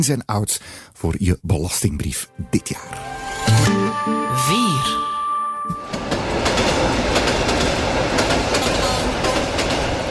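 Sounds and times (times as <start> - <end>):
speech: 0.0 - 5.0, 5.6 - 6.0
train passing on rails: 5.1 - 10.1
train wheels clickety-clack over track joints: 5.9 - 10.1.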